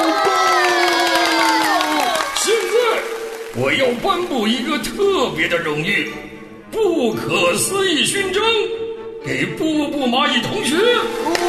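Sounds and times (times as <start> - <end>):
children cheering and shouting at a school: 0.0 - 3.7, 11.0 - 11.4
people clapping: 0.0 - 5.6, 10.8 - 11.4
speech: 3.6 - 11.4.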